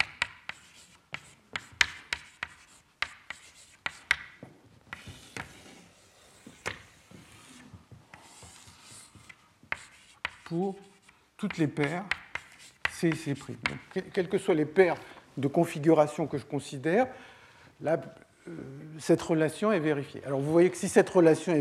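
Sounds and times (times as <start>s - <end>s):
writing by hand during a physics lecture: 0.0s - 13.8s
speech: 10.5s - 12.2s, 13.0s - 21.5s.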